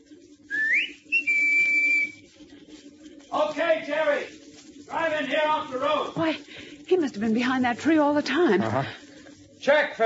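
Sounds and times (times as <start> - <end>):
low hum: 0.0 - 10.0
whistle given as a signal: 0.5 - 2.2
speech: 3.3 - 9.0, 9.6 - 10.0.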